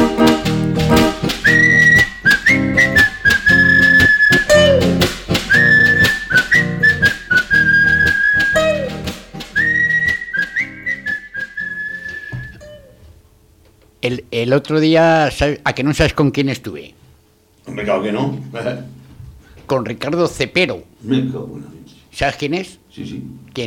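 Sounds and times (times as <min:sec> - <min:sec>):
rhythmic musical backing: 0:00.0 - 0:13.0
three young men whistling a bouncy tune: 0:01.4 - 0:12.9
speech: 0:14.4 - 0:17.0, 0:17.7 - 0:19.0, 0:19.7 - 0:23.6.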